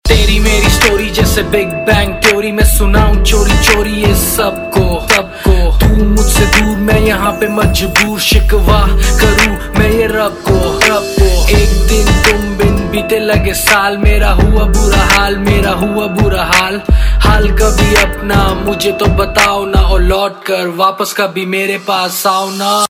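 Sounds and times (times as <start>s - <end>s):
Indian pop rap ringtone: 0.1s - 22.8s.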